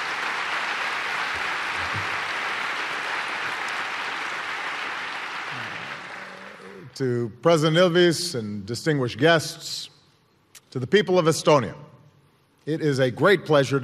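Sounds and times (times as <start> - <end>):
large crowd applause: 0.0 - 7.0
speech: 7.0 - 9.9, 10.8 - 11.9, 12.6 - 13.8.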